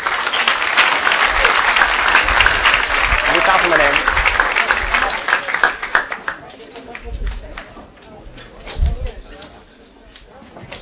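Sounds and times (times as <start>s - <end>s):
audience applause: 0.0s - 7.0s.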